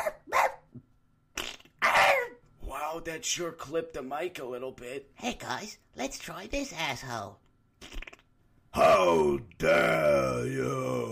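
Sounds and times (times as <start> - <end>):
dog barking: 0.0 - 0.7, 1.8 - 2.4
speech: 3.0 - 7.4, 8.7 - 11.1.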